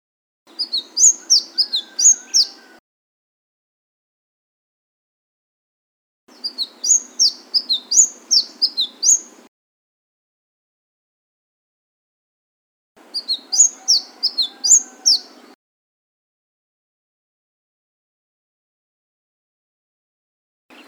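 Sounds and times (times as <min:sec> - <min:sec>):
Flame-breasted sunbird song of shrill slurred chirps: 0:00.5 - 0:02.8, 0:06.3 - 0:09.5, 0:13.0 - 0:15.6.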